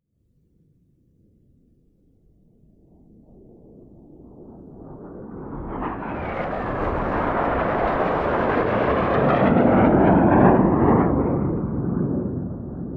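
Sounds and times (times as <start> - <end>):
F-5 jets in high formation of three flying over: 3.4 - 12.8.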